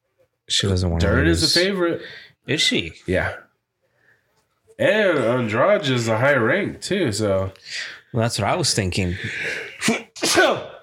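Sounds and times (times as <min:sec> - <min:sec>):
speech: 0:00.5 - 0:03.4, 0:04.8 - 0:10.7
loud sneeze: 0:09.8 - 0:10.8.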